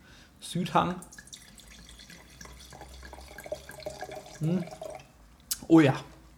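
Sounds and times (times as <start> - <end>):
speech: 0.4 - 1.2, 4.4 - 4.8, 5.6 - 6.1
wine pouring into a glass during wine service at the table: 1.0 - 5.2.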